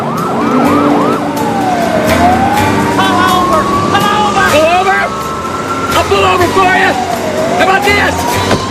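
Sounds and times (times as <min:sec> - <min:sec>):
loud police car siren: 0:00.0 - 0:08.6
low rumble of traffic and engines: 0:00.0 - 0:08.6.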